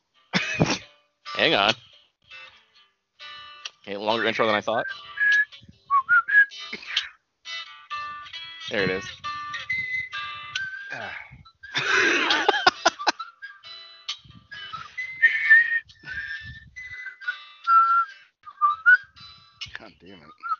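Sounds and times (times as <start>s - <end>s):
laughter: 0.4s - 0.9s, 10.9s - 13.4s
speech: 1.4s - 1.8s, 3.9s - 5.1s, 8.7s - 9.2s
whistled video game theme tune: 3.2s - 7.1s, 7.7s - 20.5s.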